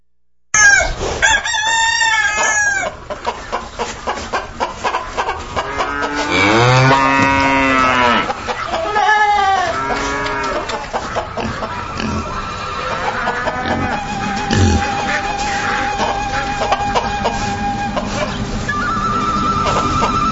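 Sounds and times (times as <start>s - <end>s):
rooster crowing: 0.6s - 3.0s, 5.7s - 10.8s, 11.6s - 18.2s
rapid clucks: 0.6s - 20.2s
long deep cow moo: 5.6s - 8.3s, 9.6s - 10.7s, 11.4s - 15.9s.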